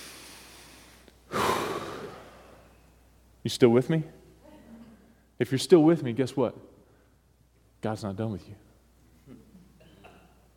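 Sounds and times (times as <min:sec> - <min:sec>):
group of people at a church service taking a deep breath together: 0:00.0 - 0:03.0
speech: 0:03.4 - 0:04.2, 0:05.4 - 0:06.7, 0:07.8 - 0:08.7.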